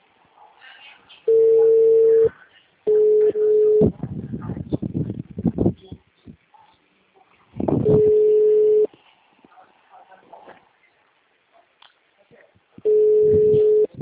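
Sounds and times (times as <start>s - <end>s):
mid-pitched electronic telephone ringing tones: 1.3s - 2.3s, 2.9s - 3.9s, 7.8s - 8.9s, 12.9s - 13.9s.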